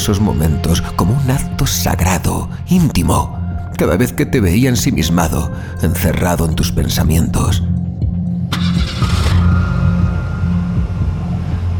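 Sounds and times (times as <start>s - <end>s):
speech: 0.0s - 7.8s
car engine starting: 8.3s - 11.7s.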